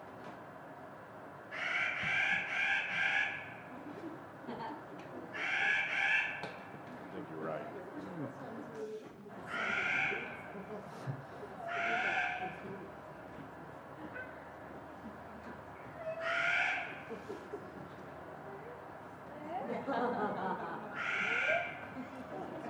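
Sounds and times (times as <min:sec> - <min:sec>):
Steller's Jay giving harsh nasal calls: 0:01.5 - 0:03.6, 0:05.3 - 0:06.4, 0:09.4 - 0:10.5, 0:11.6 - 0:12.7, 0:15.9 - 0:17.2, 0:20.9 - 0:21.9
laughter: 0:03.7 - 0:05.4, 0:09.6 - 0:15.7, 0:16.9 - 0:18.4, 0:19.4 - 0:22.6.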